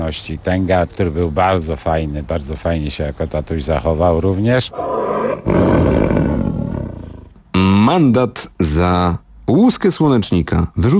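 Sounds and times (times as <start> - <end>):
speech: 0.1 - 6.2, 7.9 - 10.9
tiger roaring at a zoo: 4.7 - 7.4.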